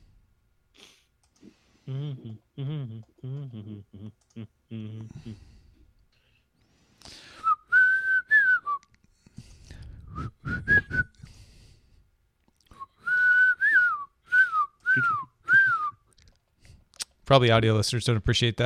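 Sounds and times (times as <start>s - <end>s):
speech: 1.9s - 5.6s, 17.3s - 18.6s
person whistling a short bright tune into the microphone: 7.4s - 8.9s, 10.0s - 11.2s, 12.7s - 16.1s.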